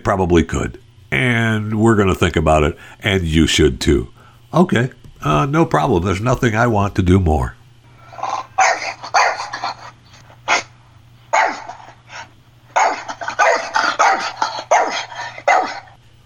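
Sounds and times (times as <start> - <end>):
low steady hum: 0.0 - 16.2
speech: 0.1 - 7.6
French bulldogs barking: 8.1 - 16.0.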